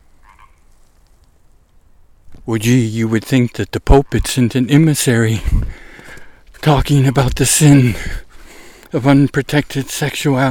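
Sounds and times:
frog croaking with a raspy double call: 0:00.2 - 0:00.6
speech: 0:02.4 - 0:05.7, 0:06.6 - 0:08.2, 0:08.9 - 0:10.4.

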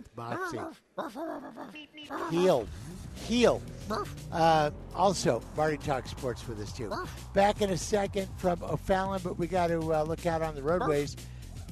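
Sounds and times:
speech: 0:00.1 - 0:11.3
dog barking and yowling: 0:00.3 - 0:02.6, 0:03.8 - 0:04.2, 0:06.9 - 0:07.2, 0:10.8 - 0:11.1.

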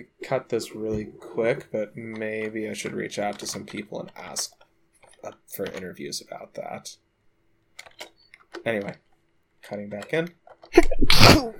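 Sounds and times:
speech: 0:00.0 - 0:04.6, 0:05.2 - 0:07.0, 0:07.8 - 0:09.0, 0:09.6 - 0:11.5
person sneezing: 0:10.8 - 0:11.5.

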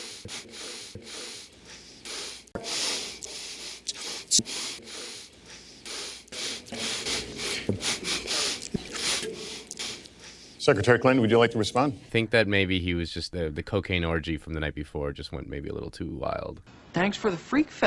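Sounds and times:
repeated nose sniffling: 0:00.0 - 0:10.6
speech: 0:04.4 - 0:04.8, 0:10.6 - 0:17.8.

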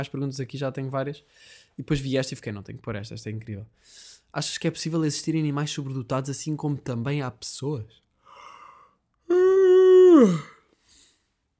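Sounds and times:
speech: 0:00.0 - 0:08.0, 0:10.2 - 0:10.5
person yawning: 0:08.4 - 0:10.7.

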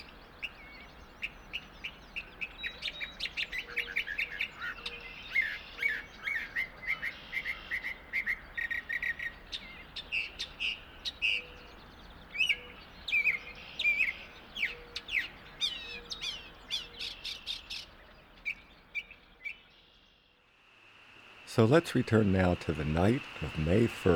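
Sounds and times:
Northern Mockingbird singing in an apple tree in a meadow: 0:00.0 - 0:20.2, 0:21.2 - 0:24.1
small stream rushing: 0:20.6 - 0:24.1
speech: 0:21.6 - 0:24.1.

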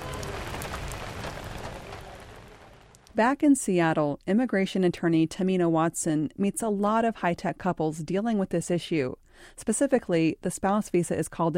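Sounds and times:
heavy monsoon rain pouring: 0:00.0 - 0:03.1
speech: 0:03.2 - 0:11.5.

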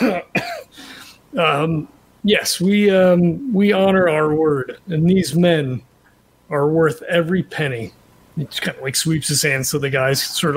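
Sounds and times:
raspy coughs: 0:00.0 - 0:00.8
speech: 0:01.3 - 0:05.9, 0:06.5 - 0:10.5.

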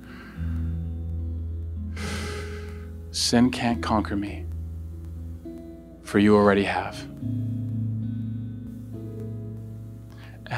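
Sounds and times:
slow deliberate deep breath: 0:00.0 - 0:00.5, 0:01.9 - 0:02.9, 0:10.1 - 0:10.4
low steady hum: 0:00.0 - 0:10.5
speech: 0:03.2 - 0:04.5, 0:06.1 - 0:07.4.

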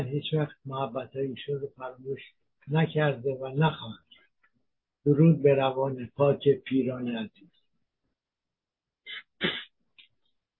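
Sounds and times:
speech: 0:00.0 - 0:04.2, 0:05.0 - 0:07.5, 0:09.1 - 0:09.6
person sneezing: 0:09.1 - 0:09.7
person sniffing: 0:09.1 - 0:09.7.

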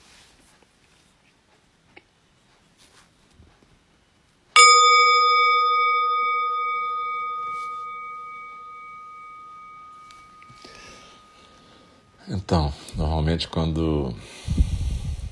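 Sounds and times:
meditation bell ringing: 0:04.6 - 0:12.8
speech: 0:12.3 - 0:14.7.

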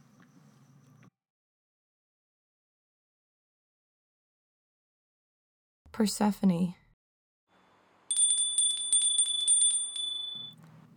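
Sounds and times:
speech: 0:05.9 - 0:06.8
small bright bell ringing rapidly: 0:08.1 - 0:10.6.

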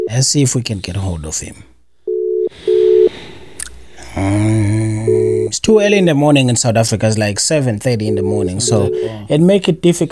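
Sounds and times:
faint noise: 0:00.0 - 0:10.0
speech: 0:00.1 - 0:01.8, 0:04.2 - 0:04.9, 0:05.5 - 0:10.0
telephone ringback tones while a call to South Africa connects: 0:02.1 - 0:03.2, 0:05.0 - 0:05.5, 0:08.0 - 0:09.3.

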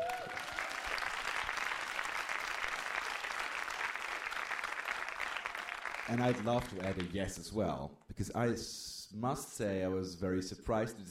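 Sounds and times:
audience applauding: 0:00.0 - 0:07.3
speech: 0:06.1 - 0:11.1.

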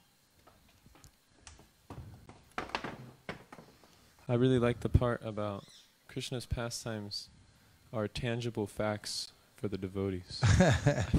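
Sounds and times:
door being pushed shut: 0:01.4 - 0:03.9
speech: 0:04.3 - 0:11.1.

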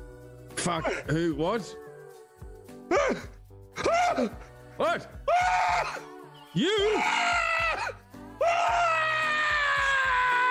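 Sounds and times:
speech: 0:00.6 - 0:01.8, 0:02.9 - 0:03.4, 0:04.1 - 0:07.4
person screaming: 0:05.3 - 0:06.0, 0:06.6 - 0:10.4.

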